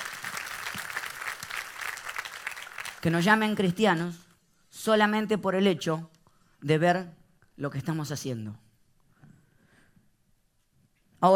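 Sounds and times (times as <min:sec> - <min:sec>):
crowd applauding: 0:00.0 - 0:03.4
speech: 0:03.0 - 0:04.2, 0:04.8 - 0:08.6.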